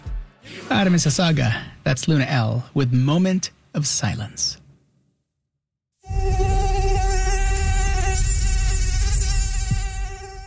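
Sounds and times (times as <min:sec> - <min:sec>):
speech: 0:00.7 - 0:04.6
mosquito buzzing with a high-pitched whine: 0:06.0 - 0:10.4.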